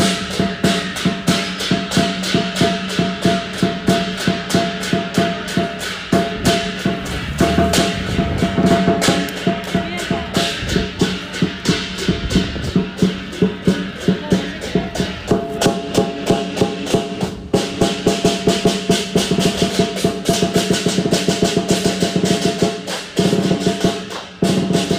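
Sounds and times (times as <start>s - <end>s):
drums for a dragon dance in a small Chinese temple: 0.0s - 24.9s
musicians accompanying a dragon dance in a small Chinese temple: 5.2s - 11.7s.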